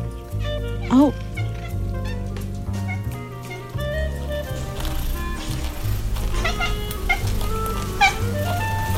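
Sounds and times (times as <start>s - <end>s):
steady music: 0.0s - 8.9s
speech: 0.9s - 1.3s
cat chattering at birds outside a window: 6.4s - 8.9s.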